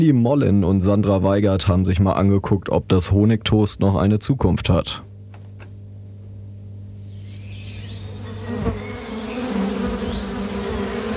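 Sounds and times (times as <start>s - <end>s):
speech: 0.0s - 5.1s
faint bird chirps in the open air: 6.9s - 11.1s
bees droning over meadows in Paderborn: 7.0s - 11.1s.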